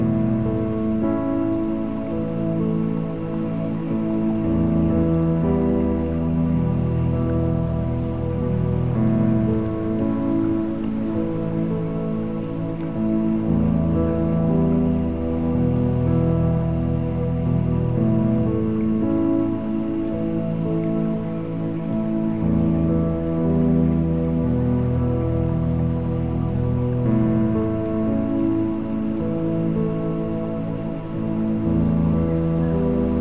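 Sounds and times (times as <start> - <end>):
baby lullaby: 0.0 - 33.1.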